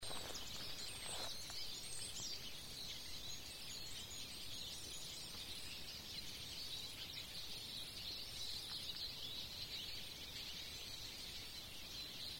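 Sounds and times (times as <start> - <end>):
Eurasian siskin calling: 0.0 - 12.3.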